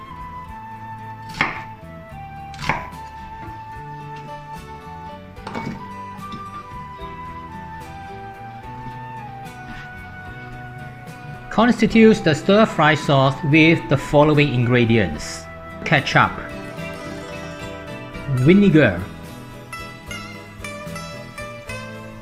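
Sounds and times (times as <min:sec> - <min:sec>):
knife chopping onions into small chunks on a board: 0:01.3 - 0:01.8, 0:02.5 - 0:03.0
steady tonal background: 0:03.5 - 0:22.1
speech: 0:11.6 - 0:16.5, 0:18.4 - 0:19.1.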